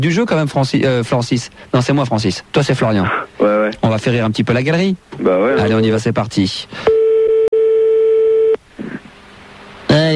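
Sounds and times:
speech: 0.0s - 6.9s, 9.9s - 10.1s
telephone line tone on a call: 6.9s - 8.6s.

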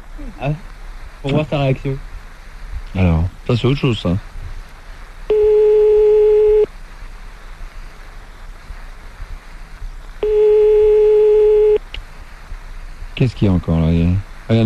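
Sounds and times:
low telephone line hiss: 0.0s - 14.6s
speech: 0.2s - 2.1s, 2.9s - 4.3s, 13.2s - 14.6s
telephone ringing tone on the line while calling someone: 5.3s - 6.7s, 10.2s - 11.8s.

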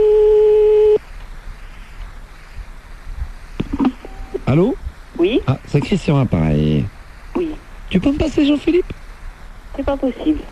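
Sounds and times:
steady electronic telephone line tone on redial: 0.0s - 1.0s
speech: 4.5s - 7.0s, 8.0s - 9.0s, 9.8s - 10.5s.

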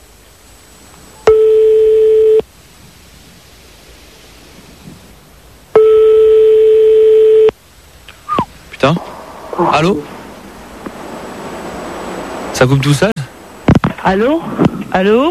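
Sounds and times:
hiss of telephone line noise: 0.0s - 15.3s
telephone number being dialed by hand: 5.8s - 7.5s
speech: 8.8s - 9.0s, 9.6s - 10.1s, 12.6s - 13.1s, 14.1s - 15.3s.

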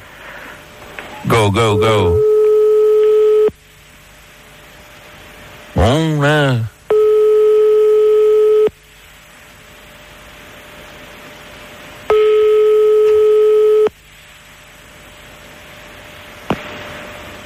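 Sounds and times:
quiet telephone line hiss: 0.0s - 3.6s, 6.9s - 8.8s, 12.0s - 14.0s
speech: 1.2s - 2.3s, 5.8s - 6.7s
telephone ringback tones of a call being placed: 1.7s - 3.5s, 6.9s - 8.7s, 12.1s - 13.9s.

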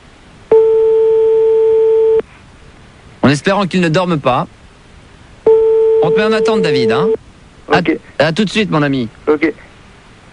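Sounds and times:
faint hiss: 0.0s - 10.3s
telephone ringback tone on a call: 0.5s - 2.2s, 5.5s - 7.2s
speech: 3.3s - 4.6s, 6.0s - 9.7s.

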